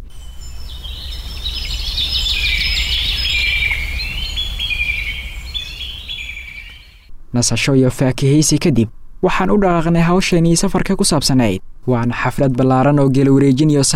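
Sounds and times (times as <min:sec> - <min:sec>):
various birds singing in chorus: 0:00.0 - 0:07.1
speech: 0:07.3 - 0:13.9.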